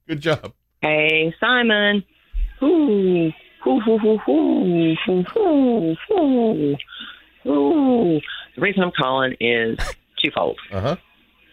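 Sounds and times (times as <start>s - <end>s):
speech: 0.1s - 11.5s
person imitating an owl call over a phone line: 10.7s - 11.0s.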